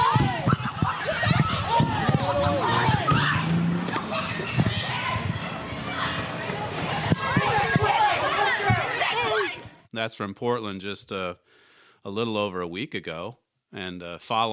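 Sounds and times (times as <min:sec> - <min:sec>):
sharp bangs and thumps: 0:00.0 - 0:08.9
noisy crowd with overlapping shouts and chatter: 0:00.0 - 0:09.9
car engine accelerating away: 0:02.1 - 0:06.5
speech: 0:10.0 - 0:14.5.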